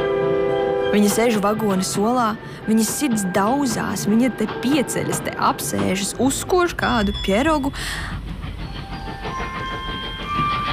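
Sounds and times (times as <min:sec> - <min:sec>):
steam locomotive chugging along rails: 0:00.0 - 0:10.7
speech: 0:00.9 - 0:08.2.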